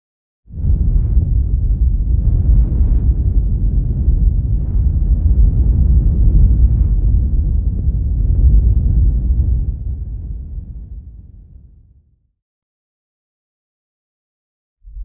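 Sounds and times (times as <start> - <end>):
fire continuous low frequency rumble: 0.5 - 12.0.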